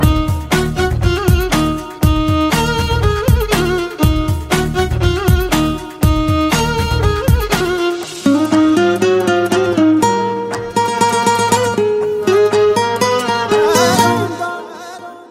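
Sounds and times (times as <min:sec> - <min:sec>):
Telugu instrumental tone: 0:00.0 - 0:15.0.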